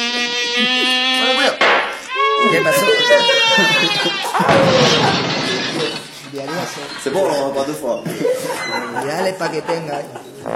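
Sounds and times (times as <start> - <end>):
mosquito-like buzzing: 0.0 - 5.9
laughter: 0.0 - 10.5
speech: 2.5 - 5.2, 6.4 - 10.5.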